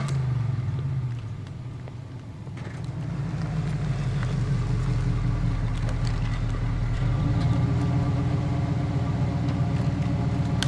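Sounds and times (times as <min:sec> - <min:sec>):
car engine idling: 0:00.0 - 0:10.6.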